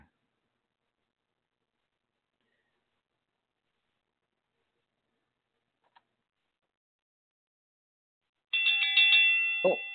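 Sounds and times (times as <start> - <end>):
bright metal wrestling ring bell struck to start a match: 8.6 - 9.9.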